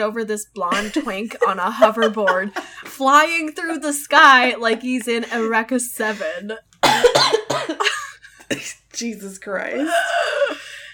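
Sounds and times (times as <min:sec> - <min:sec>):
speech: 0:00.0 - 0:10.4
laughter: 0:00.7 - 0:03.3
harsh raspy coughing fit: 0:06.8 - 0:08.9.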